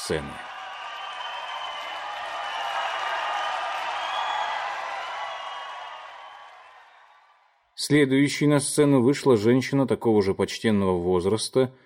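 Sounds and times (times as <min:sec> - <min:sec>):
large audience standing ovation applause: 0:00.0 - 0:07.5
speech: 0:00.1 - 0:00.5, 0:07.8 - 0:11.8.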